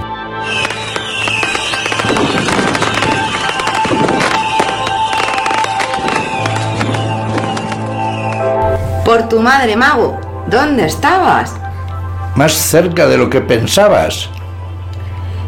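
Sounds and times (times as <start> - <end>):
bright whistling tones: 0.4 - 9.0
small fireworks crackling and popping: 0.4 - 9.1
speech: 9.2 - 11.6, 12.4 - 14.4.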